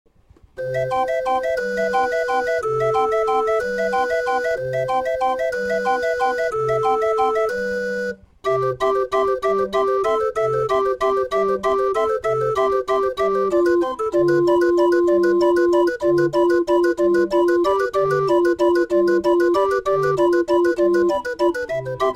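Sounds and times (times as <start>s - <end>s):
organ playing three short notes: 0.6s - 22.1s.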